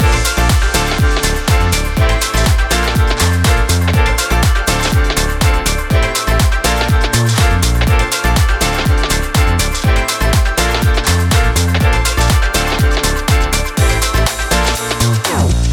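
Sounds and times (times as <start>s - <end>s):
bright uplifting dance music: 0.0s - 15.7s.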